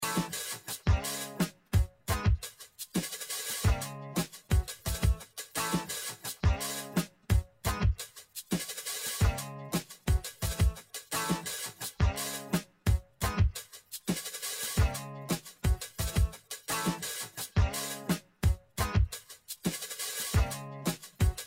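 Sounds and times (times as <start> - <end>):
drum loop: 0.0 - 21.4.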